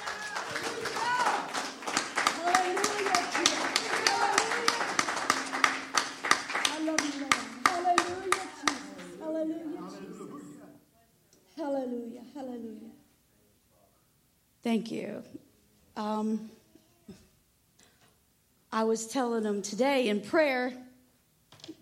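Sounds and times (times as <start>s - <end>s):
crowd applause: 0.0s - 9.3s
speech: 14.7s - 15.4s, 16.0s - 16.6s, 18.8s - 20.8s.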